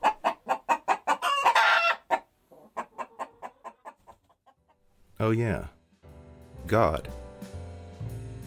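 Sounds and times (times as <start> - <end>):
chickens clucking: 0.0 - 4.8
rooster crowing: 1.2 - 2.1
speech: 5.2 - 5.8, 6.7 - 7.2.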